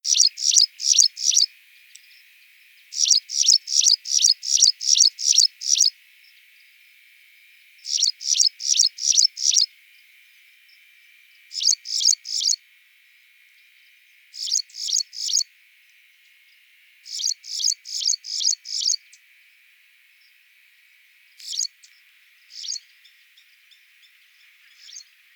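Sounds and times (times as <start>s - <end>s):
Graceful Prinia Prinia gracilis: 0.0s - 25.3s.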